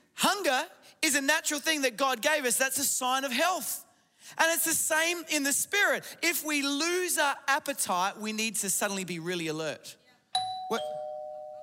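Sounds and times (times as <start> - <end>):
speech: 0.2 - 10.0, 10.7 - 10.9
doorbell ringing with a sustained electronic chime tone: 10.4 - 11.6.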